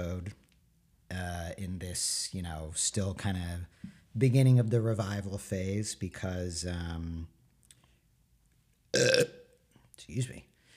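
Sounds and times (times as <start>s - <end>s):
speech: 2.0s - 7.4s, 8.9s - 9.3s, 10.0s - 10.5s
loud voiced belch: 9.0s - 9.4s.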